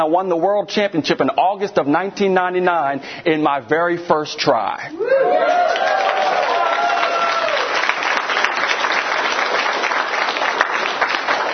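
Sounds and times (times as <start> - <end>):
speech: 0.0 - 5.9
large audience applauding a speaker on stage: 5.3 - 11.5.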